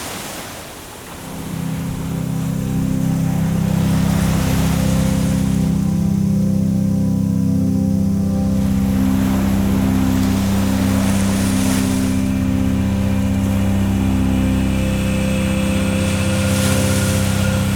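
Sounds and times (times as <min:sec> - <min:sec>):
relaxing music: 0:01.1 - 0:17.7.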